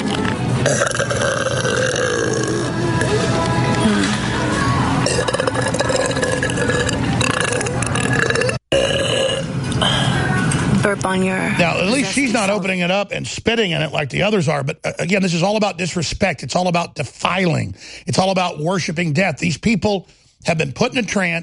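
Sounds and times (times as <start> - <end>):
noisy indoor background: 0.0 - 21.4
person burping on food products: 0.6 - 2.8, 5.0 - 10.1
speech: 11.1 - 21.4.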